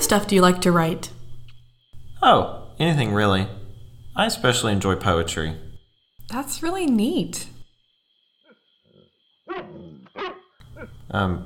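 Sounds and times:
speech: 0:00.1 - 0:01.2, 0:02.2 - 0:03.6, 0:04.2 - 0:05.6, 0:06.3 - 0:07.5, 0:11.1 - 0:11.4
neighbour's dog barking: 0:08.4 - 0:11.1.

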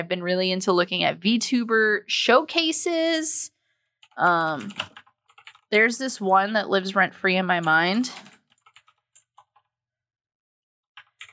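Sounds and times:
speech: 0:00.0 - 0:03.6, 0:04.2 - 0:05.0, 0:05.7 - 0:08.3
typing on a computer keyboard with newly fitted keys: 0:04.0 - 0:05.7, 0:07.6 - 0:09.7, 0:11.0 - 0:11.3.

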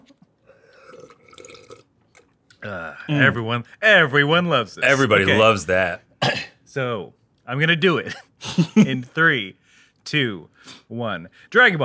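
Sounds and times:
person slurping a sip of water: 0:00.0 - 0:02.6
speech: 0:02.6 - 0:11.8.

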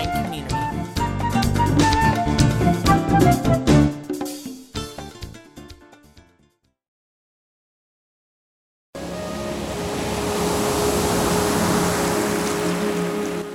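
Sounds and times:
gentle music: 0:00.0 - 0:03.9, 0:09.0 - 0:13.5
ocean waves: 0:09.0 - 0:13.5.

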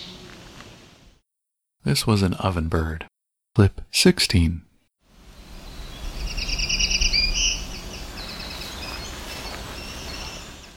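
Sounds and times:
speech: 0:01.8 - 0:04.6
black-throated green warbler song: 0:05.2 - 0:10.7.

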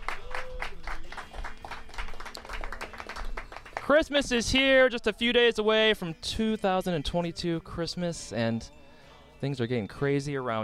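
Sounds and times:
small group applauding: 0:00.0 - 0:04.3
speech: 0:03.9 - 0:08.8, 0:09.4 - 0:10.6.

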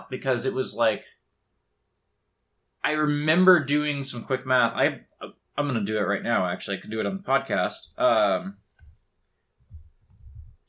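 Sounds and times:
speech: 0:00.1 - 0:01.2, 0:02.8 - 0:08.6
computer keyboard keys being tapped: 0:08.8 - 0:10.6.

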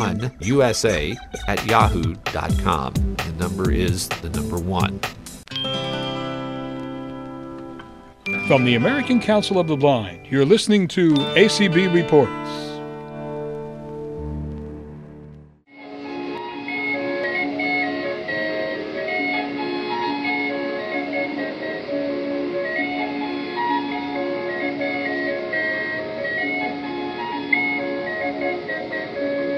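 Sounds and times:
steam calliope music from atop a paddle wheel steamer heard through a hotel window: 0:00.0 - 0:05.4, 0:08.3 - 0:12.8, 0:15.9 - 0:29.5
speech: 0:00.0 - 0:05.8, 0:08.2 - 0:12.7.

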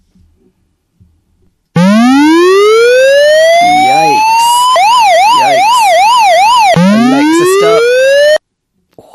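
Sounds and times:
smart speaker security alarm siren: 0:01.8 - 0:08.4.

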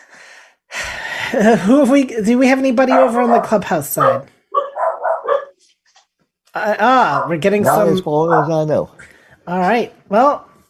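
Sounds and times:
speech: 0:01.3 - 0:04.4, 0:06.6 - 0:10.5
dog barking: 0:02.8 - 0:05.6, 0:07.0 - 0:08.8.

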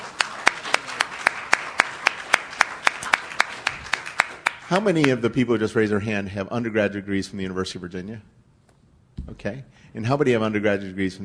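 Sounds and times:
small group's measured hand clapping: 0:00.0 - 0:05.2
speech: 0:04.7 - 0:08.4, 0:09.3 - 0:11.2.

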